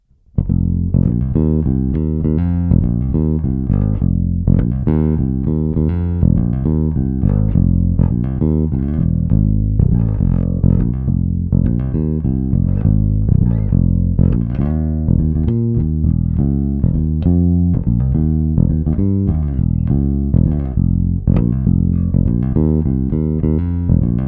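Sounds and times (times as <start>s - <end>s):
bass: 0.0s - 24.2s.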